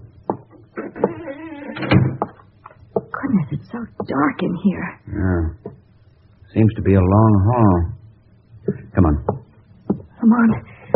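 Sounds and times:
sharp knocks and clunks from the door latch and frame: 0:00.3 - 0:02.4
house door with a police seal creaking open slowly: 0:00.3 - 0:02.5
speech: 0:03.5 - 0:05.7, 0:06.5 - 0:07.9, 0:08.7 - 0:09.4, 0:10.2 - 0:10.7.

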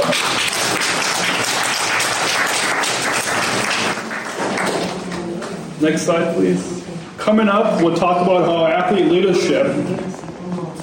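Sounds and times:
audience applause: 0:00.0 - 0:05.2
speech: 0:05.8 - 0:10.2.

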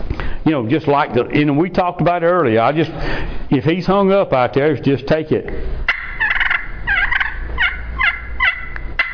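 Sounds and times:
faint noise: 0:00.0 - 0:09.1
speech: 0:00.4 - 0:05.8
hunter's turkey call imitating turkey yelps and clucks: 0:05.9 - 0:09.1.

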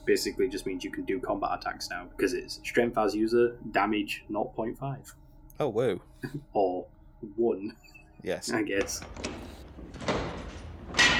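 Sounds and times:
speech: 0:00.0 - 0:10.1
double doors swinging open into a command center with a mechanical whoosh: 0:08.5 - 0:11.1.

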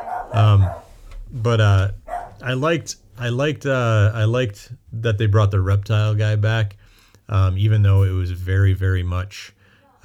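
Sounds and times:
dog barking: 0:00.0 - 0:01.1, 0:01.9 - 0:02.5
speech: 0:00.4 - 0:10.0.

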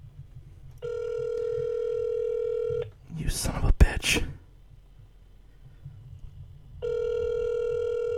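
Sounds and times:
faint low hum: 0:00.0 - 0:08.1
ringback tone on a phone line during an outgoing call: 0:00.8 - 0:02.9, 0:06.8 - 0:08.1.

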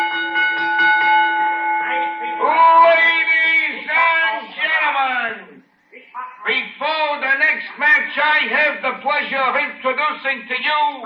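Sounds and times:
boxing ring bell struck before a match: 0:00.0 - 0:03.3
faint noise: 0:01.7 - 0:11.0
speech: 0:09.0 - 0:11.0.

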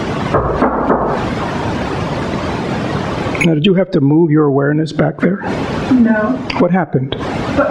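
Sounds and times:
low rumbling hush: 0:00.0 - 0:07.6
man banging on a wall: 0:00.3 - 0:01.2
speech: 0:03.4 - 0:07.6.

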